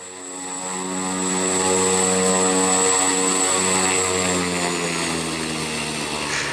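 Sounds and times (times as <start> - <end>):
single-engine turboprop aircraft engine with 675-horsepower turbine starting: 0.0 - 6.5.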